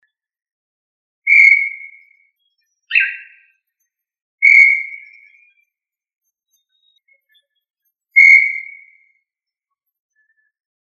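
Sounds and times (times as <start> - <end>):
tinamou whistling: 1.3 - 2.2, 4.4 - 5.4, 8.2 - 9.1.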